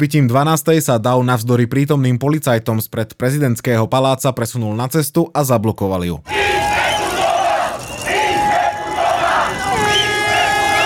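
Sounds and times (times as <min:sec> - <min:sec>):
speech: 0:00.0 - 0:06.8
large crowd of protesters shouting and chanting in front of presidential palace: 0:06.2 - 0:10.8.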